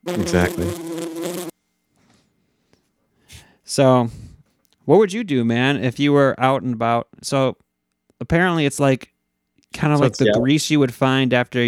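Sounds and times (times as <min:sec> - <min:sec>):
speech: 0:00.0 - 0:00.9, 0:03.8 - 0:04.2, 0:04.8 - 0:07.6, 0:08.2 - 0:09.1, 0:09.7 - 0:11.6
bee buzzing: 0:00.0 - 0:01.5.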